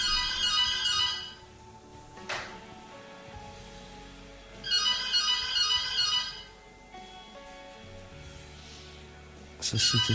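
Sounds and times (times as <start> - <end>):
telephone ringing: 0.0 - 1.4, 4.6 - 6.5.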